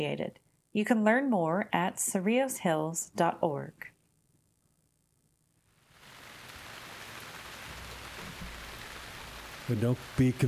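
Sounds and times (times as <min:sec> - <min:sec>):
speech: 0:00.0 - 0:03.9, 0:09.7 - 0:10.4
steady rain falling outside: 0:05.8 - 0:10.4.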